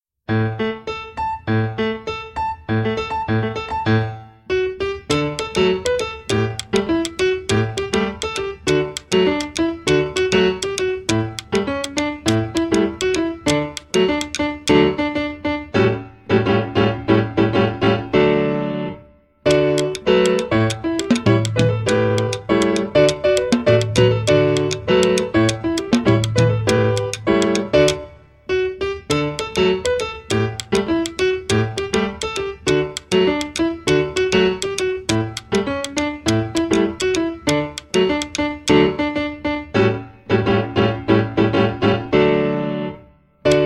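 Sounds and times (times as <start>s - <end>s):
jazz piano: 0.3s - 43.6s
jazz percussion: 5.1s - 15.0s, 19.5s - 28.1s, 29.1s - 39.0s.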